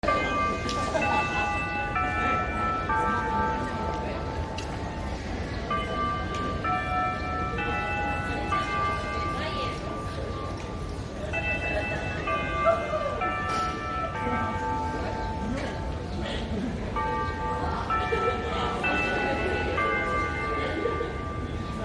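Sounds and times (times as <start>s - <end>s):
Japanese school bell chime: 0.0s - 21.8s.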